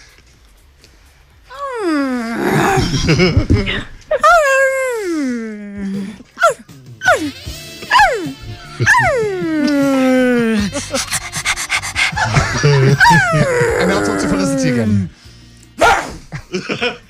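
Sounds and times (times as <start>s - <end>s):
speech: 2.4s - 4.2s
laughter: 2.6s - 4.6s, 8.5s - 15.0s, 16.4s - 17.0s
person vocally imitating dog barking and howling: 4.2s - 15.1s, 15.8s - 16.2s.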